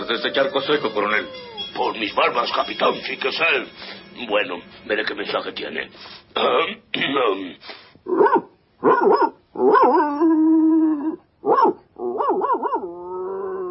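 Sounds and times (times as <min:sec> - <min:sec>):
speech: 0:00.1 - 0:10.4
dog barking and yowling: 0:08.1 - 0:10.0, 0:11.4 - 0:12.9.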